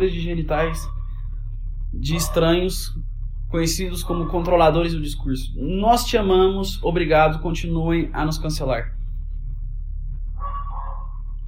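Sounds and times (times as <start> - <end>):
speech: 0.0 - 1.0, 1.9 - 9.0
steady low rumble: 0.0 - 11.4
dog barking: 2.0 - 2.6, 4.0 - 4.8, 10.4 - 11.3.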